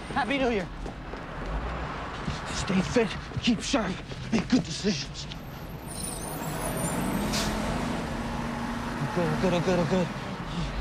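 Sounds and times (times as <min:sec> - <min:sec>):
bus engine rumble: 0:00.0 - 0:10.7
speech: 0:00.2 - 0:01.0, 0:02.6 - 0:05.4, 0:09.2 - 0:10.7
bus air brake hiss: 0:07.2 - 0:07.6.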